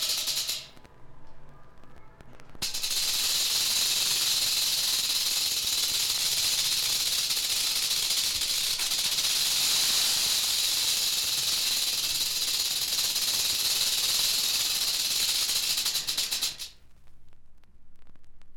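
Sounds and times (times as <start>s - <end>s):
rattlesnake rattle dry buzz: 0.0s - 0.7s, 2.6s - 16.8s.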